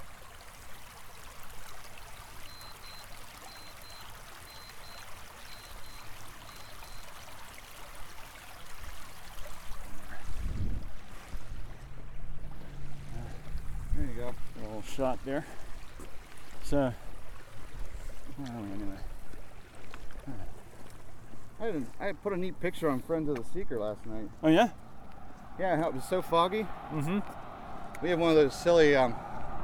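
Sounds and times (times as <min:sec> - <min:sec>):
running water of a stream: 0:00.0 - 0:29.6
low rumbling bumps: 0:10.4 - 0:14.9, 0:24.2 - 0:29.6
speech: 0:14.2 - 0:15.6, 0:16.7 - 0:17.1, 0:18.4 - 0:19.1, 0:21.6 - 0:24.8, 0:25.6 - 0:27.4, 0:28.0 - 0:29.2.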